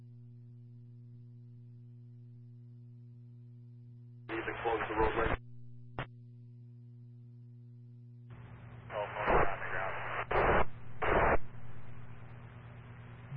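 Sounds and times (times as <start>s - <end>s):
low hum: 0.0s - 13.3s
garbled broken-up radio voice of a unit calling dispatch: 4.3s - 5.4s, 8.9s - 11.4s
heavy radio static: 4.3s - 5.4s, 8.8s - 12.3s
speech: 4.4s - 5.4s.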